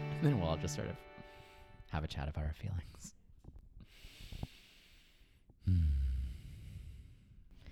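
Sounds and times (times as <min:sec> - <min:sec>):
speech: 0:00.2 - 0:01.2, 0:01.9 - 0:03.2
heavy breathing: 0:03.8 - 0:07.6.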